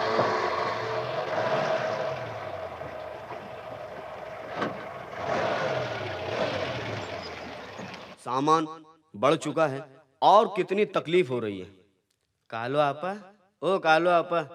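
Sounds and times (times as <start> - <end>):
truck engine running and revving: 0.0 - 8.2
speech: 8.3 - 11.8, 12.5 - 14.5.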